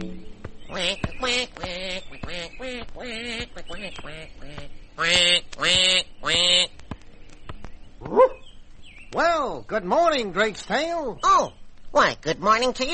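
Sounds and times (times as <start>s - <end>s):
duck quacking: 0.7s - 6.8s
speech: 9.8s - 12.9s.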